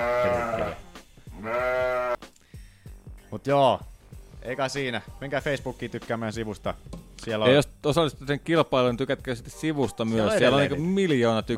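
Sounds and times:
sheep bleating: 0:00.0 - 0:02.2
speech: 0:03.4 - 0:11.5.

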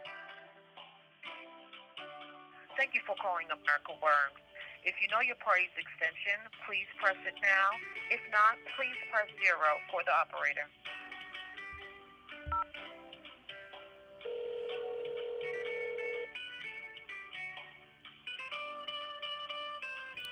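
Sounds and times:
speech: 0:02.8 - 0:10.9
tonal electronic phone sounds: 0:12.5 - 0:12.8, 0:14.2 - 0:16.4
telephone ring tone of an unanswered call: 0:14.2 - 0:16.4.

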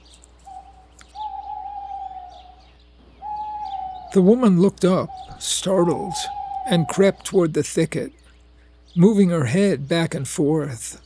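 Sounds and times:
owl hooting: 0:00.0 - 0:07.6
birds chirping: 0:00.0 - 0:11.0
speech: 0:04.1 - 0:08.2, 0:08.9 - 0:11.0.

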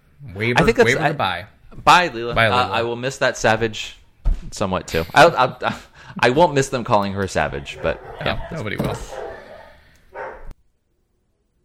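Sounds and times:
speech: 0:00.2 - 0:09.2
dog barking: 0:07.5 - 0:10.5.

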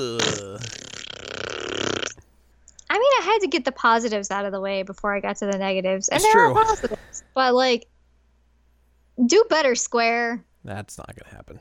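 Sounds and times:
buzzy sputtering raspberry fart noise made with the mouth: 0:00.0 - 0:02.2
speech: 0:03.4 - 0:07.9, 0:09.2 - 0:11.5.

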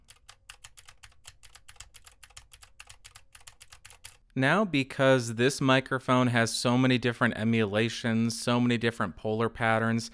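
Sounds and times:
typing on mechanical keyboard with Gateron blue clicky switches: 0:00.0 - 0:04.2
speech: 0:04.4 - 0:10.1.

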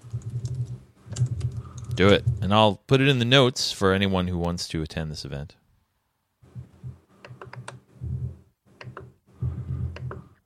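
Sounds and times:
computer keyboard typing: 0:00.0 - 0:02.2, 0:07.2 - 0:07.8
speech: 0:02.0 - 0:05.6.

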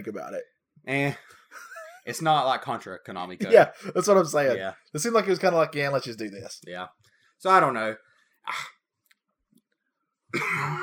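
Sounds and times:
speech: 0:00.0 - 0:08.8, 0:10.3 - 0:10.8
person coughing: 0:10.4 - 0:10.8.

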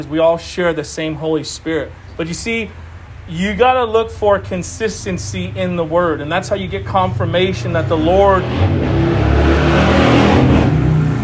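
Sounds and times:
speech: 0:00.0 - 0:09.6
car engine revving: 0:04.3 - 0:11.2.

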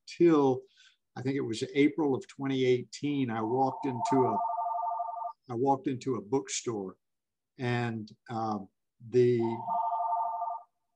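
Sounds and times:
speech: 0:00.1 - 0:04.5, 0:05.5 - 0:07.0, 0:07.6 - 0:09.8
telephone ringing: 0:03.8 - 0:05.4, 0:09.5 - 0:10.7.

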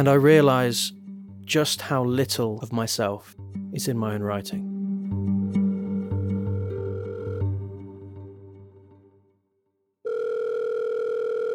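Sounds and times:
speech: 0:00.0 - 0:05.3
music: 0:00.0 - 0:09.8
electronic telephone ringing tone of an outgoing call: 0:06.5 - 0:07.7, 0:10.0 - 0:11.5.

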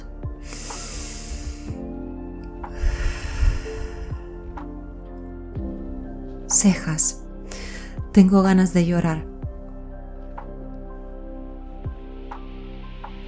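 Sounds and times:
slow deep breath taken before the next round of an exercise: 0:00.4 - 0:01.8, 0:02.7 - 0:04.6, 0:07.4 - 0:08.0
speech: 0:06.6 - 0:07.2, 0:08.2 - 0:09.3.

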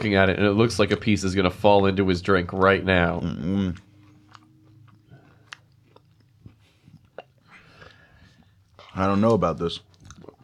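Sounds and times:
speech: 0:00.0 - 0:03.9, 0:09.0 - 0:09.9
low steady hum: 0:00.0 - 0:10.4
chewing a soggy cookie dunked in a drink: 0:02.6 - 0:10.4.

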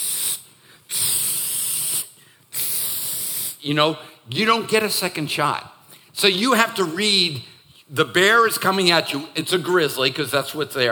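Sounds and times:
voice imitating an aerosol spray hiss: 0:00.0 - 0:03.6
speech: 0:03.6 - 0:10.9.

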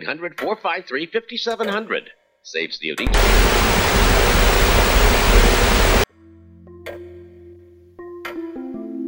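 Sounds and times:
speech: 0:00.0 - 0:04.5
loud rough surf-like rushing white noise: 0:03.1 - 0:06.0
sharp clicks: 0:03.1 - 0:06.0
sustained electronic tones: 0:03.1 - 0:06.0.

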